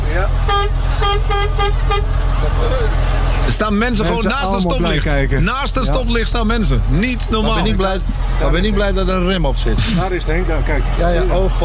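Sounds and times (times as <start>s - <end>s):
low engine rumble: 0.0s - 11.6s
vehicle horn tooting at a red traffic light: 0.4s - 2.1s
speech: 1.4s - 11.6s.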